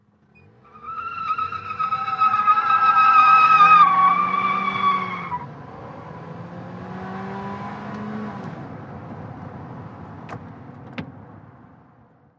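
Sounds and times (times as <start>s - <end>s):
compact small car accelerating and peeling out: 0.3s - 8.9s.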